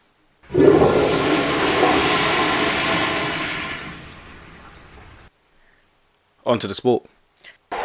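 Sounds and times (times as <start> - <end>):
toilet flushing: 0.5 - 5.3
speech: 6.5 - 7.2.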